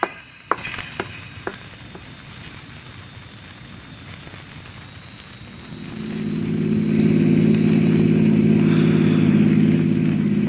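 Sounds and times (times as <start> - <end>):
car engine approaching: 5.8 - 10.4.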